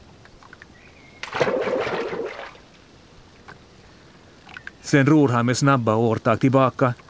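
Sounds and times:
bicycles splashing overboard into water: 1.2s - 2.7s
speech: 4.9s - 7.0s.

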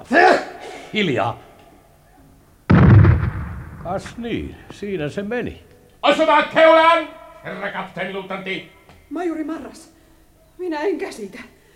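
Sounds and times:
speech: 0.9s - 1.5s, 3.8s - 9.9s, 10.6s - 11.6s
torpedo striking its target with deep explosion: 2.7s - 4.7s.

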